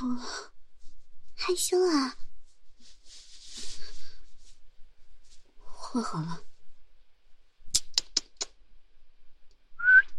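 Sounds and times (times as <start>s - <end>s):
speech: 1.5s - 2.2s, 5.9s - 6.5s
sharp clicks: 7.7s - 8.6s
person whistling: 9.8s - 10.1s.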